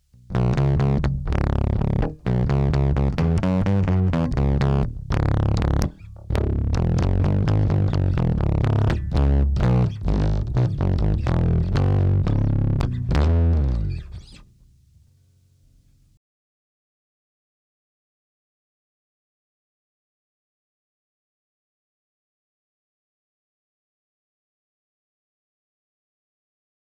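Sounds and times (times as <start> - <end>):
bass through DI preamp drive: 0.0 - 15.1.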